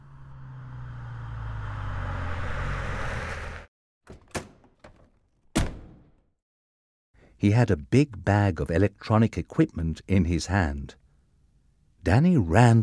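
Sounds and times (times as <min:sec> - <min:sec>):
big black car engine rumbling outside a house: 0:00.0 - 0:03.7
speech: 0:07.4 - 0:11.0, 0:12.0 - 0:12.8.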